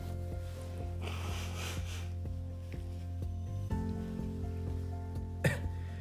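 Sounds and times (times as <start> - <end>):
faint tissue rustling: 0.0 - 5.4
person blowing nose in short breathy honks: 1.0 - 2.2.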